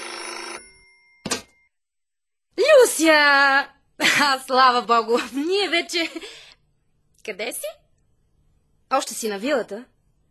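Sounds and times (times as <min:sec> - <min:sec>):
telephone bell ringing in a metallic burst: 0:00.0 - 0:01.7
speech: 0:03.0 - 0:06.4, 0:07.2 - 0:07.8, 0:08.9 - 0:09.9.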